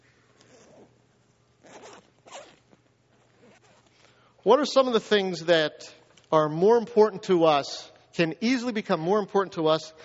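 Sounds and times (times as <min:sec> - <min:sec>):
zipper pulls rasping across a bag: 0:00.4 - 0:00.9, 0:01.6 - 0:03.9
speech: 0:04.4 - 0:10.0.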